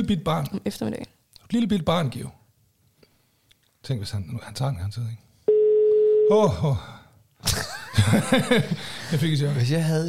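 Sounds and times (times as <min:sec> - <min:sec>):
speech: 0:00.0 - 0:02.4, 0:03.8 - 0:05.3, 0:06.3 - 0:10.0
electronic phone ringing tone: 0:05.5 - 0:06.4
laughter: 0:07.4 - 0:09.6.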